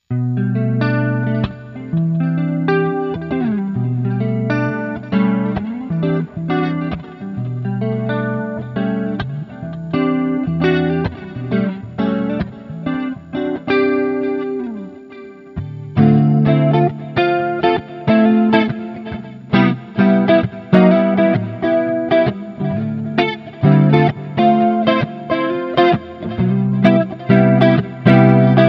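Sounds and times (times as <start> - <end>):
electric guitar neck pickup with effects: 0.0 - 28.6.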